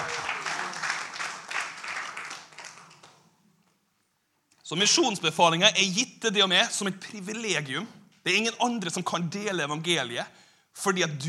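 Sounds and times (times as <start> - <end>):
crowd applause: 0.0 - 3.2
speech: 4.7 - 11.2.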